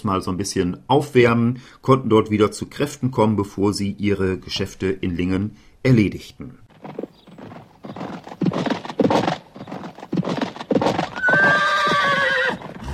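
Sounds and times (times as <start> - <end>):
speech: 0.0 - 7.0
horse hooves clip-clopping on a hard surface: 6.7 - 12.9
horse neighing: 10.9 - 12.9.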